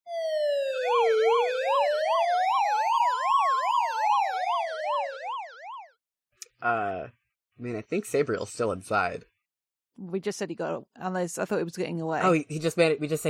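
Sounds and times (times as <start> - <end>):
emergency vehicle siren rapid warbling yelp downtown: 0.1 - 6.0
speech: 6.6 - 9.3, 10.0 - 13.2.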